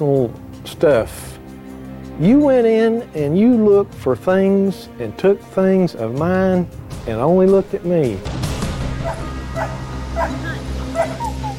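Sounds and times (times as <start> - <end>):
speech: 0.0 - 1.4, 2.2 - 8.4
tracking dogs barking and yipping: 8.9 - 11.5.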